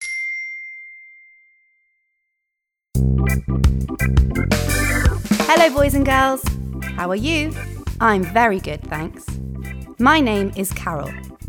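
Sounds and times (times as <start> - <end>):
single clear bell ding: 0.0 - 2.2
speech: 3.0 - 9.4, 10.0 - 11.3
loud busy music: 3.3 - 9.4.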